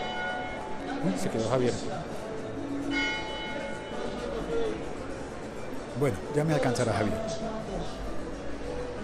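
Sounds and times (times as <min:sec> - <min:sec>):
ringing bell tone: 0:00.0 - 0:01.1, 0:02.8 - 0:04.6
busy outdoor street traffic: 0:00.0 - 0:09.0
crowd noise on a busy street: 0:00.0 - 0:09.0
speech: 0:01.0 - 0:02.2, 0:06.0 - 0:08.0.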